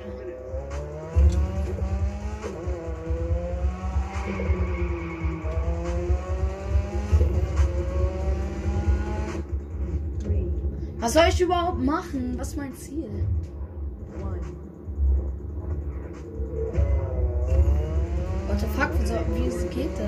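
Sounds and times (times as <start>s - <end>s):
video game car engine revving: 0.0s - 10.2s, 14.3s - 20.0s
speech: 11.1s - 13.5s, 18.7s - 20.0s.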